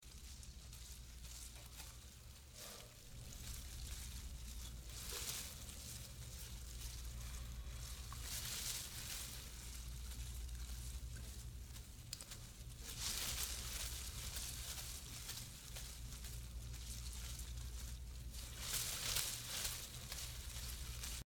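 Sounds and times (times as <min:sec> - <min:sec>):
leaves rustling: 0:00.0 - 0:21.2.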